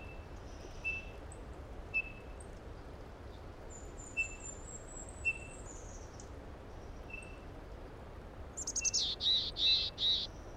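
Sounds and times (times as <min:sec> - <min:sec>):
steady background noise: 0:00.0 - 0:10.5
Mountain Chickadee raspy call in Rocky Mountain National Park: 0:08.6 - 0:10.3.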